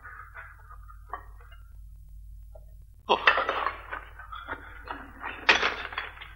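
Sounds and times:
ceramic pieces and stones clattering at a pottery kiln mouth: 3.2s - 6.3s.

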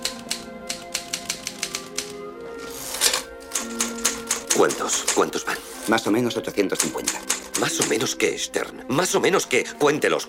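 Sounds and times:
typewriter keys clacking: 0.0s - 5.5s, 6.7s - 8.1s
speech: 4.6s - 10.2s.

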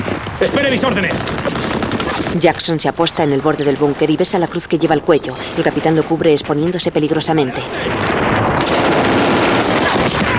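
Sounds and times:
heavy gunfire from German soldiers firing around a bunker: 0.4s - 2.8s, 7.7s - 10.3s
speech: 0.4s - 8.8s.

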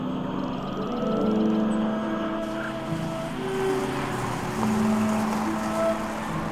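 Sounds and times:
road rumble: 0.0s - 6.5s
car engine hum cruising along a road through a wooded area: 1.7s - 6.5s.

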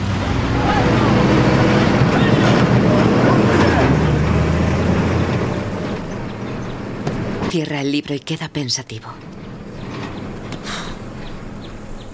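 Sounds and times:
two heavy trucks driving past: 0.0s - 8.2s, 9.0s - 12.1s
speech: 7.6s - 9.3s.

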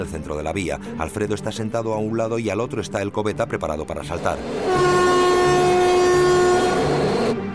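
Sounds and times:
speech: 0.0s - 5.1s
train horn blast: 4.3s - 7.4s.

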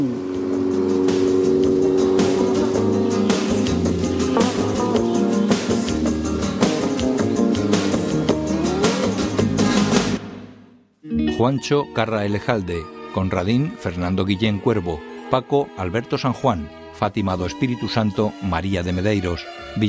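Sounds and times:
speech: 0.0s - 0.2s, 11.4s - 19.8s
car driving away: 0.0s - 10.2s.

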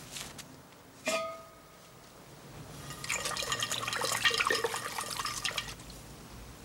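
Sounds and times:
metallic ring from the pan: 1.0s - 1.6s
water poured into a saucepan to make coffee in a kitchen: 2.8s - 5.8s
faint irregular splashes and drips: 2.8s - 5.9s.

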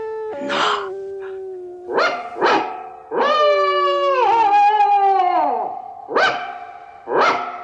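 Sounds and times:
small Scottish terrier howling at night: 0.0s - 5.7s
small Scottish terrier barking as an alarm in a city yard: 0.4s - 3.4s, 6.1s - 7.6s.

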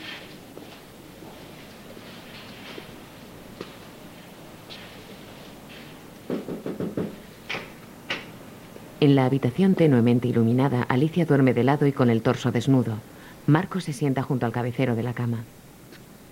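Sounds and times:
knocking on a bedroom door off a hallway: 6.3s - 7.2s
speech: 9.0s - 15.6s.

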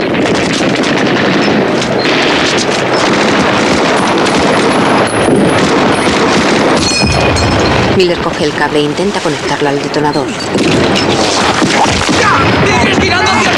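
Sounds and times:
rifle gunfire in an audio drama war scene at a river crossing: 0.0s - 8.6s, 10.5s - 13.5s
speech: 8.0s - 13.5s.

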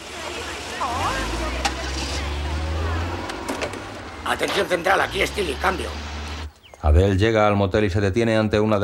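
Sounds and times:
car engine starting and driving away: 0.0s - 6.5s
speech: 4.3s - 6.0s, 6.8s - 8.8s.

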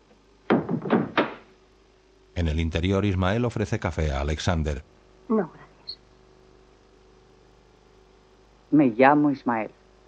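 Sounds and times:
door being shut: 0.5s - 1.5s
speech: 2.4s - 5.6s, 8.7s - 9.8s.

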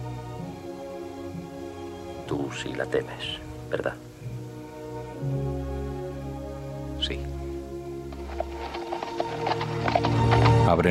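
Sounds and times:
speech: 2.3s - 4.1s, 10.7s - 10.8s
white horse's hooves clip-clopping at a walking pace: 8.0s - 10.8s.

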